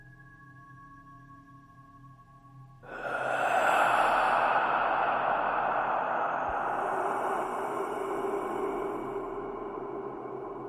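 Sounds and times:
man lying still exhaling loudly: 0:02.8 - 0:10.4
man lying still breathing in deeply: 0:02.8 - 0:10.6.

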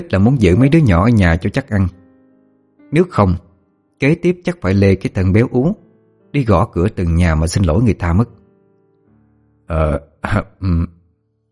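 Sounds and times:
speech: 0:00.0 - 0:02.0, 0:02.9 - 0:08.4, 0:09.7 - 0:11.0
voice imitating a heavyset man clearing his throat: 0:09.8 - 0:11.0.

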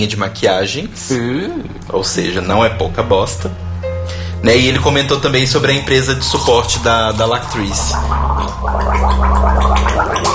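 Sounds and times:
speech: 0:00.0 - 0:03.7, 0:04.4 - 0:10.3
steady low hum: 0:00.0 - 0:10.3
person gargling: 0:01.0 - 0:02.4, 0:06.4 - 0:10.3.

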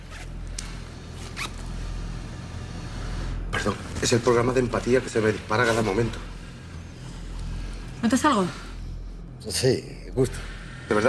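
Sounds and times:
low steady hum: 0:00.0 - 0:11.0
clothing zipper being pulled down: 0:00.1 - 0:00.3, 0:01.2 - 0:01.7
speech: 0:03.6 - 0:06.3, 0:08.0 - 0:08.6, 0:09.4 - 0:11.0.

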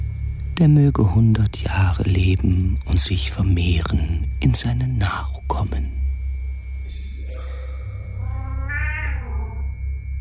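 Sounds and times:
low steady hum: 0:00.0 - 0:10.1
speech: 0:00.6 - 0:06.0
cat meowing: 0:08.2 - 0:09.8.

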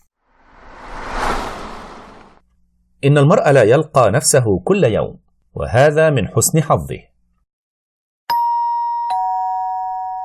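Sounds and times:
speech: 0:03.0 - 0:07.1
apartment doorbell ding-dong chime: 0:08.3 - 0:10.2.

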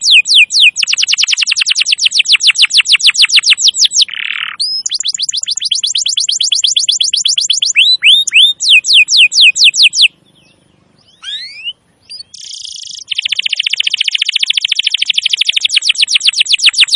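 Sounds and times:
canary song: 0:00.0 - 0:16.9.

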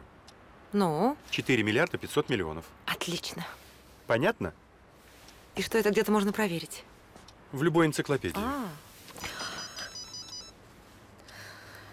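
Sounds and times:
low noise: 0:00.0 - 0:11.9
speech: 0:00.7 - 0:04.6, 0:05.6 - 0:06.9, 0:07.5 - 0:09.3
mobile phone ringing with a short electronic ringtone: 0:09.2 - 0:10.6.

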